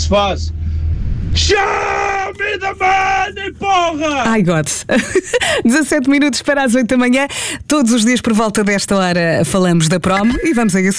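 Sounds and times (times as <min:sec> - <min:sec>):
low rumble: 0:00.0 - 0:10.9
speech: 0:00.1 - 0:00.7, 0:01.3 - 0:10.9
man shouting loudly: 0:01.4 - 0:04.3
laughter: 0:04.8 - 0:05.7.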